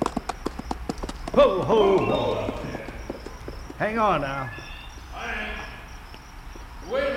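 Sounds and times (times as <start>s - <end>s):
horse hooves clip-clopping: 0.0s - 7.1s
speech: 1.3s - 2.7s, 3.8s - 4.6s
wavering tonal call: 1.7s - 3.5s, 4.2s - 6.0s.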